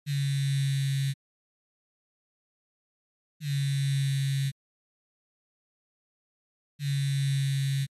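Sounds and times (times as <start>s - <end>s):
phone vibrating for an incoming call: 0.1s - 1.2s, 3.4s - 4.6s, 6.8s - 7.9s.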